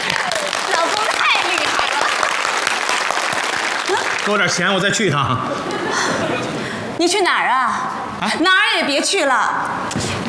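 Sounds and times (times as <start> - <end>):
live audience applause: 0.0 - 4.8
speech: 4.3 - 10.2
laughter: 5.0 - 6.8.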